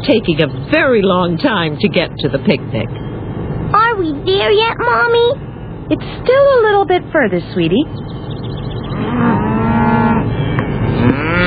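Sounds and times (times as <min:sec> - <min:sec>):
speech: 0:00.1 - 0:03.0, 0:03.7 - 0:08.2, 0:08.9 - 0:09.4
several cows mooing: 0:08.8 - 0:11.4.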